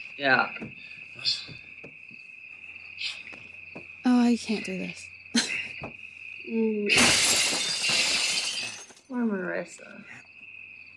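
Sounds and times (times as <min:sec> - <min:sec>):
speech: 0:00.0 - 0:01.6, 0:04.1 - 0:05.0, 0:05.8 - 0:07.3, 0:09.1 - 0:10.2
crickets chirping: 0:00.0 - 0:10.9.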